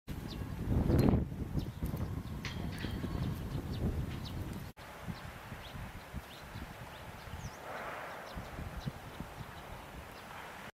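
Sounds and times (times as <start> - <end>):
Pallas's reed bunting singing: 0.2 - 10.4.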